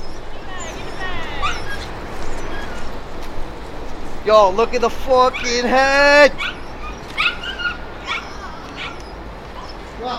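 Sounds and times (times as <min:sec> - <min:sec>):
dog hunting rats whimpering and yipping: 0:00.0 - 0:03.1, 0:05.3 - 0:10.1
constant rough noise: 0:00.0 - 0:10.1
speech: 0:04.2 - 0:06.6.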